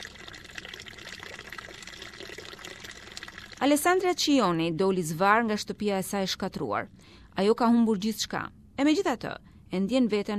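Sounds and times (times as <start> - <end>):
water running from open tap in earthquake-wrecked village: 0.0 - 3.6
speech: 3.6 - 10.3.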